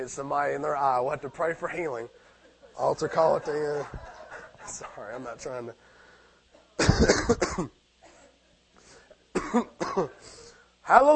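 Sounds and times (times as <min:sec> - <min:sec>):
speech: 0:00.0 - 0:05.9, 0:06.8 - 0:07.8, 0:09.5 - 0:11.1
laughter: 0:01.1 - 0:05.7
throat clearing: 0:06.8 - 0:08.3
person coughing harshly: 0:06.8 - 0:08.4, 0:09.3 - 0:10.2.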